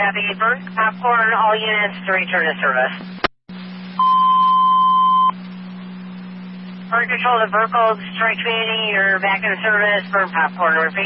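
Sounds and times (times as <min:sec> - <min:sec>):
speech: 0:00.0 - 0:03.2, 0:06.9 - 0:11.0
constant low hum: 0:00.0 - 0:11.0
alarm panel electronic beep as alarm is reset: 0:04.0 - 0:05.4.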